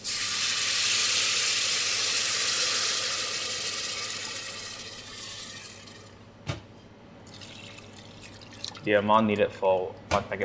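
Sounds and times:
water poured into a hot pan of browned onion and noodle seasoning sizzling: 0.0s - 5.8s
speech: 8.8s - 10.4s.

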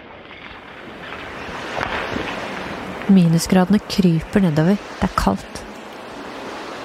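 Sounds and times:
polar sea ice grinding and creaking around a ship's hull: 0.0s - 4.8s
speech: 3.1s - 5.6s.

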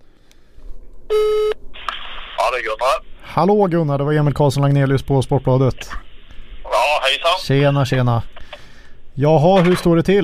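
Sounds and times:
phone line static hiss: 0.0s - 10.2s
electronic phone dialing tone: 1.1s - 1.6s
speech: 2.6s - 6.0s, 7.4s - 8.6s, 9.2s - 10.2s.

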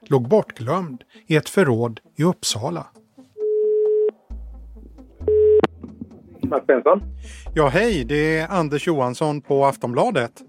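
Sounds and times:
speech: 0.1s - 3.0s, 6.5s - 10.4s
phone line ringing tone beeps: 3.4s - 4.2s, 5.2s - 5.7s.

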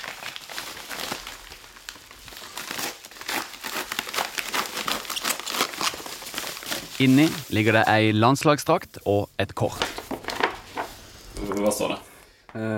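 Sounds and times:
paper crinkling and rustling as a parcel is unwrapped: 0.0s - 8.0s, 9.6s - 11.8s
speech: 7.0s - 9.9s, 11.6s - 12.7s.

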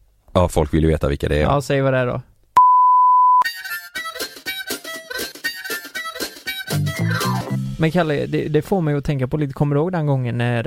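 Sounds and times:
speech: 0.4s - 2.3s, 7.8s - 10.6s
censor bleep over spoken words: 2.6s - 3.5s.

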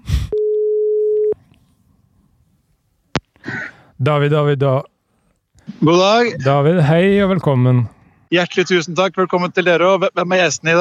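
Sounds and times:
telephone line tone while someone places a call: 0.3s - 1.4s
speech: 4.0s - 4.9s, 5.7s - 10.7s.

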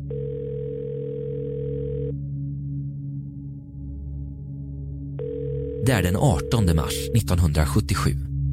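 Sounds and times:
telephone dial tone: 0.1s - 2.2s, 5.2s - 7.2s
speech: 5.9s - 8.3s.

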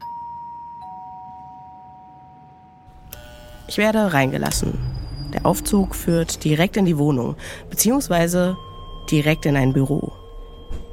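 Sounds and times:
apartment doorbell ringing with two electronic tones: 0.0s - 2.8s, 8.4s - 10.9s
speech: 3.7s - 10.1s.

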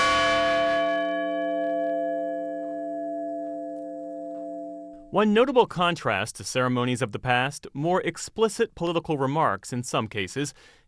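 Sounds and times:
large memorial bell tolling: 0.0s - 5.2s
speech: 5.1s - 10.8s.

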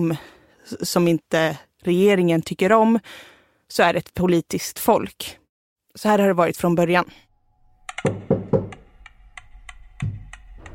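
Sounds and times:
speech: 0.0s - 5.4s, 6.0s - 7.2s, 8.0s - 8.3s
prisoners knocking on prison cell walls: 8.1s - 8.8s.

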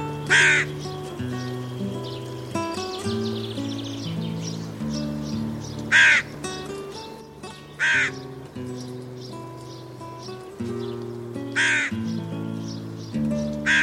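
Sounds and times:
gentle music: 0.0s - 13.8s
hooded crow giving rasping caws: 0.3s - 0.9s, 5.8s - 6.7s, 7.5s - 8.3s, 11.5s - 12.1s, 13.6s - 13.8s.

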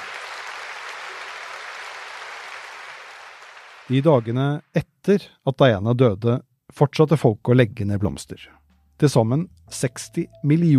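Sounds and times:
large crowd applauding in Westminster Abbey: 0.0s - 4.6s
speech: 3.9s - 10.7s.

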